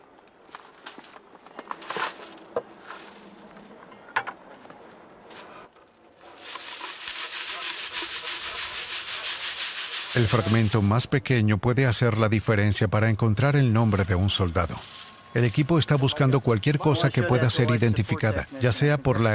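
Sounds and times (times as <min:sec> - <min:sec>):
dirt sifted by hand through a fine mesh screen: 0:05.4 - 0:11.1, 0:13.4 - 0:19.3
speech: 0:10.2 - 0:19.3.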